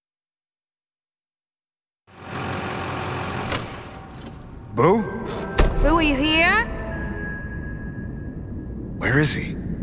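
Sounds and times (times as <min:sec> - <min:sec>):
car engine running while driving: 0:02.1 - 0:04.7
speech: 0:04.8 - 0:05.2, 0:05.9 - 0:06.7, 0:09.0 - 0:09.6.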